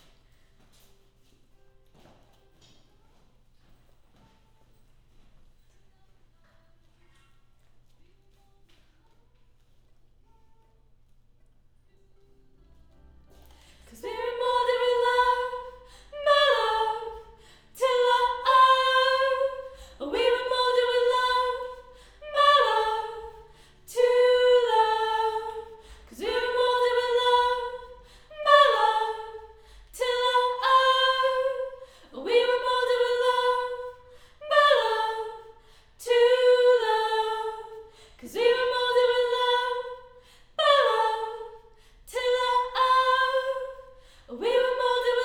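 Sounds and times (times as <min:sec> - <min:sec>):
choir singing high mid harmony: 0:13.2 - 0:45.2.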